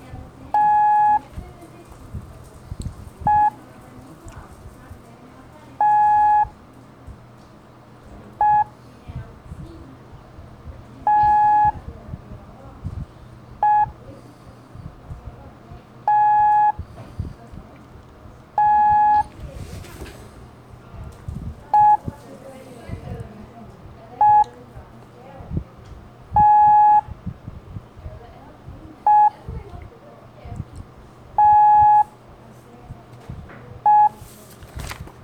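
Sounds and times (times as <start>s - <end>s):
low murmuring background: 0.0s - 35.2s
mid-pitched Morse code beeps for letters T and E: 0.5s - 1.3s, 3.2s - 3.6s, 5.8s - 6.6s, 8.4s - 8.7s, 11.1s - 11.8s, 13.6s - 14.0s, 16.0s - 16.8s, 18.6s - 19.3s, 21.8s - 22.1s, 24.2s - 24.5s, 26.3s - 27.1s, 29.0s - 29.4s, 31.4s - 32.1s, 33.8s - 34.2s.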